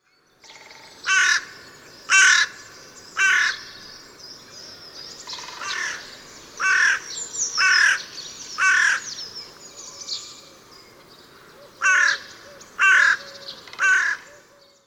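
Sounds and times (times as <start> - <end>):
birds: 0.0 - 14.8
crow calling: 0.4 - 3.9, 5.2 - 9.2, 11.4 - 14.8.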